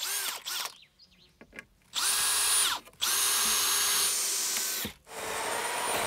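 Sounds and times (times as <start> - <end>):
power saw cutting through wooden planks in a house facade in the Black Forest: 2.0 - 6.0.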